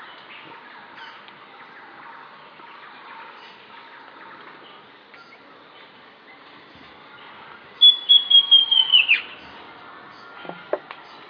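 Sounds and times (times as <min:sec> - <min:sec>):
Southern Chestnut-tailed Antbird Myrmeciza hemimelaena whistled notes: 0:07.8 - 0:09.3.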